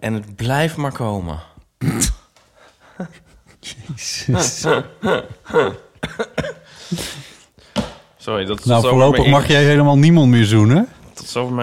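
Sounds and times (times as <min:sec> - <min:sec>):
speech: 0:00.0 - 0:02.2, 0:03.0 - 0:07.2, 0:08.2 - 0:11.6
person coughing harshly: 0:01.8 - 0:02.3, 0:04.6 - 0:07.4
laughter: 0:02.9 - 0:07.3.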